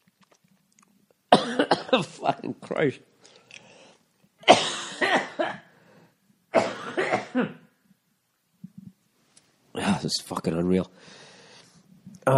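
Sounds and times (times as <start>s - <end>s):
harsh coughing from a bad coughing fit: 1.3s - 2.2s, 4.4s - 5.7s, 6.5s - 7.7s
speech: 1.5s - 3.4s, 10.4s - 11.3s.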